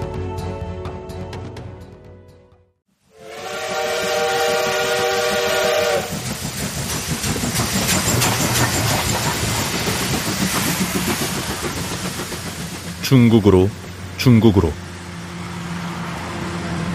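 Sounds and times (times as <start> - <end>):
steam express train whistle: 3.1 - 6.3
steam express train rumbling and clattering on rails: 3.6 - 16.9
speech: 13.1 - 14.9.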